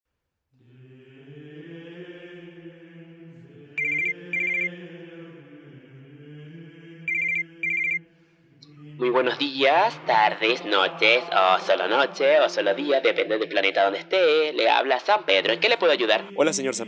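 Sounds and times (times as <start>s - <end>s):
ringback tone of an outgoing telephone call: 3.8s - 4.7s, 7.1s - 8.0s
speech: 9.0s - 16.8s.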